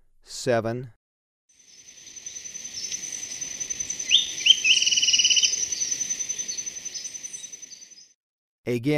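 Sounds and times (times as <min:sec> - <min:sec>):
speech: 0:00.3 - 0:01.0, 0:08.7 - 0:08.9
steady high insect whine: 0:01.6 - 0:08.1
Golden-faced Tyrannulet subspecies albigularis calling in Ecuador: 0:01.6 - 0:08.2.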